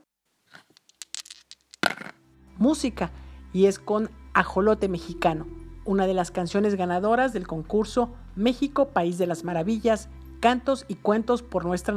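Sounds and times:
dice thrown and rattling across a hard surface: 0.5s - 2.2s
speech: 2.6s - 11.9s.

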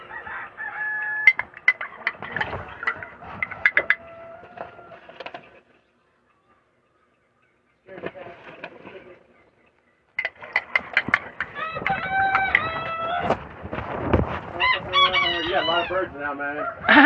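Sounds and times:
rooster-like crow: 0.0s - 1.4s, 2.8s - 5.1s, 11.5s - 13.4s, 14.6s - 17.0s
hens clucking and squawking: 0.0s - 17.0s.

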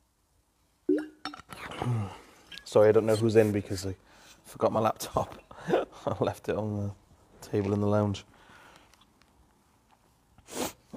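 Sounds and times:
glass clinking: 0.9s - 1.5s
speech: 1.8s - 8.3s.

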